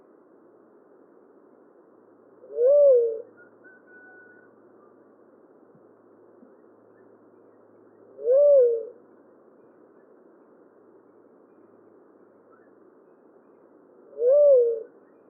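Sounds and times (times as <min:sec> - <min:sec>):
faint steady hiss: 0:00.0 - 0:15.2
Tolima dove Leptotila conoveri hooting coo: 0:02.4 - 0:04.5, 0:08.1 - 0:09.0, 0:14.1 - 0:15.0.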